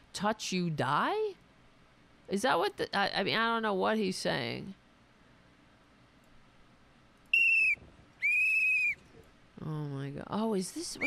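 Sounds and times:
speech: 0:00.2 - 0:01.4, 0:02.3 - 0:04.8, 0:09.6 - 0:11.0
sharp shrill whistle blasts: 0:07.3 - 0:09.2.

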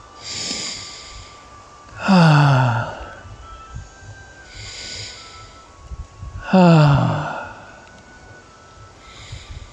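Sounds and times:
slow deep breathing with sighing exhales: 0:00.2 - 0:03.4, 0:04.4 - 0:05.7, 0:06.3 - 0:07.9, 0:09.0 - 0:09.7.

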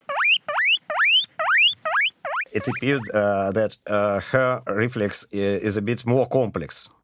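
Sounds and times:
female animal squealing high-pitched for food: 0:00.0 - 0:03.2
speech: 0:02.6 - 0:07.0.

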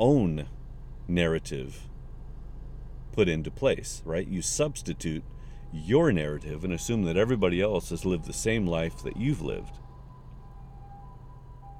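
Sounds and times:
speech: 0:00.0 - 0:01.9, 0:03.2 - 0:09.8
low rumble of traffic: 0:00.0 - 0:11.7
ambulance siren wailing while passing: 0:04.2 - 0:11.7.

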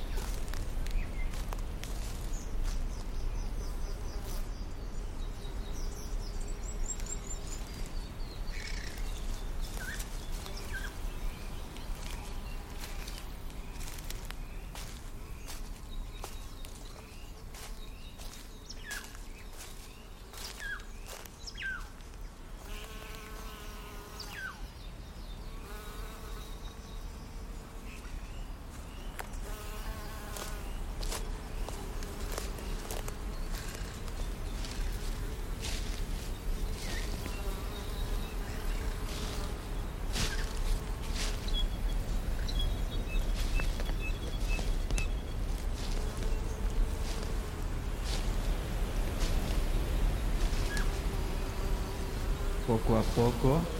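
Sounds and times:
birds chirping: 0:00.0 - 0:53.7
insects buzzing outdoors among plants and vegetation: 0:00.0 - 0:53.7
soft rustling footsteps of people walking: 0:00.1 - 0:03.0, 0:11.8 - 0:21.9, 0:30.3 - 0:37.4, 0:39.0 - 0:51.1
speech: 0:52.7 - 0:53.7.

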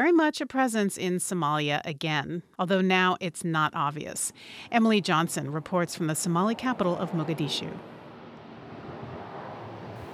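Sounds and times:
speech: 0:00.0 - 0:08.0
ocean waves crashing on coral shore: 0:04.3 - 0:10.1.

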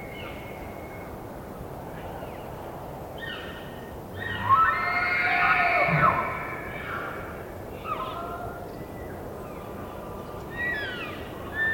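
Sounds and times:
gusting wind in the trees: 0:00.0 - 0:11.7
bull elk bugling in rutting season: 0:05.6 - 0:07.1
elk thin rising whistles and chirps: 0:05.7 - 0:07.0.

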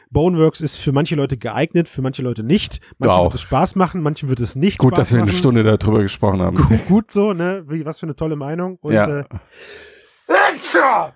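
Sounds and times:
speech: 0:00.1 - 0:11.1
soft drawn-out breath in: 0:09.4 - 0:10.3
person sneezing: 0:10.3 - 0:11.0.

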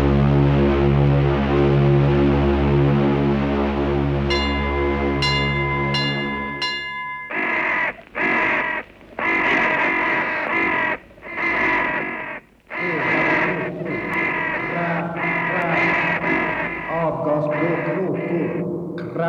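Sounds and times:
low sustained drone: 0:00.0 - 0:18.7
bright chiming tones: 0:04.3 - 0:08.1
crows cawing: 0:04.3 - 0:19.1.

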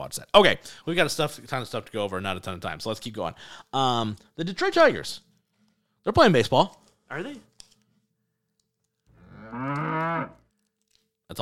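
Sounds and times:
speech: 0:00.1 - 0:05.3, 0:06.0 - 0:07.5, 0:09.5 - 0:10.4
cow mooing: 0:09.1 - 0:10.4.

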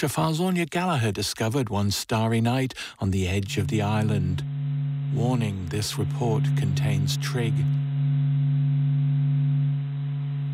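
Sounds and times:
speech: 0:00.0 - 0:04.5, 0:05.1 - 0:07.8
sun sonification low hum of sustained pure tones: 0:03.1 - 0:10.5.

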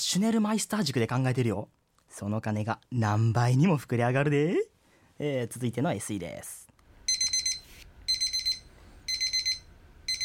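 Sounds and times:
speech: 0:00.0 - 0:06.6
faint hum: 0:00.0 - 0:10.2
electronic kitchen timer beeping for cup noodles: 0:07.1 - 0:10.2.

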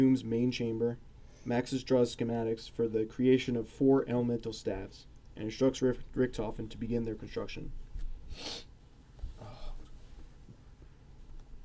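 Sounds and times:
speech: 0:00.0 - 0:08.7
faint low hum: 0:00.0 - 0:11.6
wet sniffs through a stuffy nose: 0:08.3 - 0:08.7.

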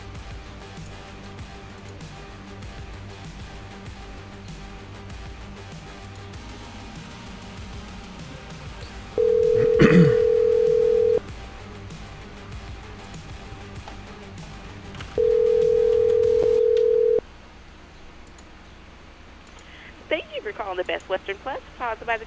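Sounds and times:
ringback tones of an outgoing phone call to Washington: 0:09.2 - 0:11.2, 0:15.2 - 0:17.2
speech: 0:21.0 - 0:22.2.

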